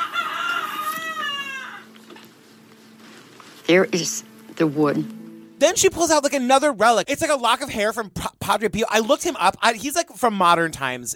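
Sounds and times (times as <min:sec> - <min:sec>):
rooster crowing: 0:00.0 - 0:02.0
speech: 0:03.7 - 0:11.1.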